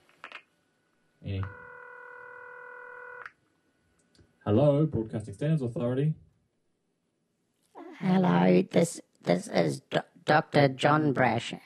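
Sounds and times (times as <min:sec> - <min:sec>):
telephone ringing with a steady electronic tone: 0:01.5 - 0:03.2
speech: 0:04.5 - 0:06.2, 0:08.5 - 0:11.6.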